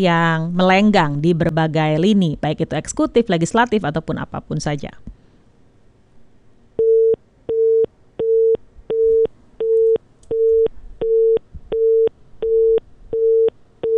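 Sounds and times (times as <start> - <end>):
speech: 0.0 - 5.2
telephone busy tone after a dropped call: 6.8 - 13.9.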